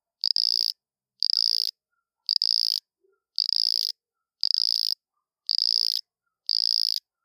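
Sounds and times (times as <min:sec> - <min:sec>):
cricket frog calling: 0:00.2 - 0:01.7, 0:02.3 - 0:02.8, 0:03.4 - 0:07.0.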